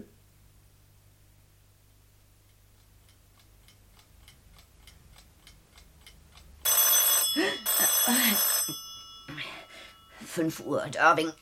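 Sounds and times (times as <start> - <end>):
telephone bell ringing: 6.7 - 10.4
speech: 10.4 - 11.3.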